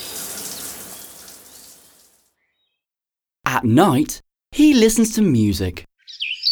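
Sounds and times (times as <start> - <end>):
water spraying from a shower: 0.0 - 2.2
speech: 3.5 - 6.2.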